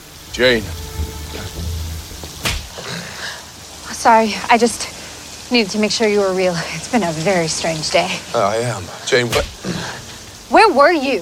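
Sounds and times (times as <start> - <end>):
low steady rumble: 0.0 - 2.8
speech: 0.4 - 1.6, 4.0 - 9.9, 10.6 - 11.2
slap across the face: 9.3 - 9.6.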